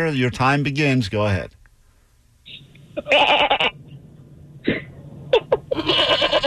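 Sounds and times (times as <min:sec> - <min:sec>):
speech: 0:00.0 - 0:01.6, 0:02.5 - 0:03.5
person imitating goat bleats: 0:03.0 - 0:03.7, 0:05.7 - 0:06.4.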